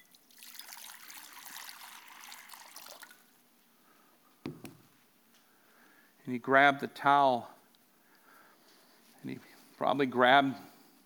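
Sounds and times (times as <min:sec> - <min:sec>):
water pouring into a basin during a foot washing: 0:00.0 - 0:03.4
hollow clunk: 0:04.5 - 0:04.9
speech: 0:06.3 - 0:07.5, 0:09.8 - 0:10.7.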